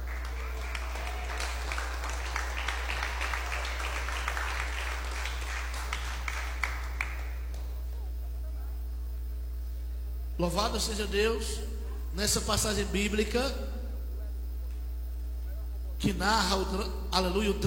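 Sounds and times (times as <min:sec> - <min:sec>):
audience clapping hands: 0:00.0 - 0:07.9
low steady hum in the room: 0:00.0 - 0:17.6
speech: 0:10.4 - 0:13.8, 0:16.0 - 0:17.6.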